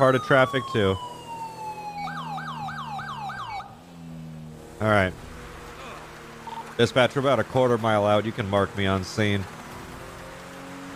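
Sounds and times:
speech: 0.0s - 1.1s, 4.8s - 5.2s, 6.8s - 9.6s
police car siren in a video game: 0.0s - 4.6s.

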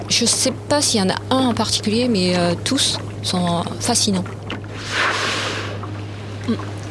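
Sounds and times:
low engine hum: 0.0s - 6.8s
open-water ambience: 0.0s - 6.8s
speech: 0.1s - 5.2s, 6.5s - 6.7s
whale blow at the surface: 4.7s - 6.7s.

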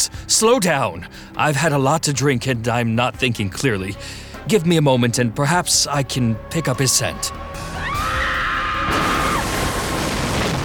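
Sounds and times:
speech: 0.3s - 7.7s
woman screaming in a tiny farming village at the base of a hill: 7.6s - 9.5s.

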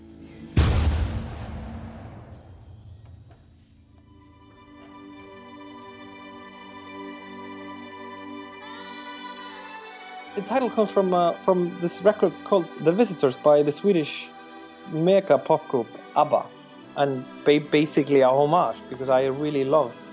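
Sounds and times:
cannon blast outside: 0.6s - 3.7s
speech: 10.4s - 14.3s, 14.9s - 20.0s.

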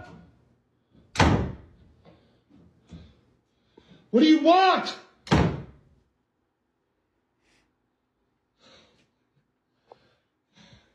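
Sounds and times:
door slammed shut with a loud bang: 1.1s - 1.7s, 5.2s - 5.8s
speech: 4.1s - 5.0s.

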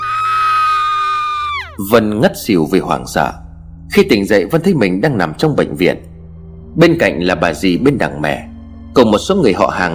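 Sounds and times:
woman's terrified piercing scream: 0.0s - 1.8s
speech: 1.8s - 6.1s, 6.8s - 9.9s.

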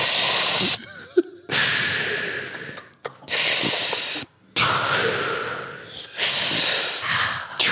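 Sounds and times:
person breathing forcefully in a breathing exercise for easing a stitch: 0.0s - 0.8s, 1.5s - 7.7s.

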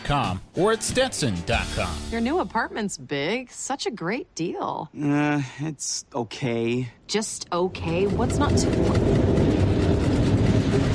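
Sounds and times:
speech: 0.1s - 9.4s
subway train rumbling beneath an apartment: 8.0s - 10.9s.

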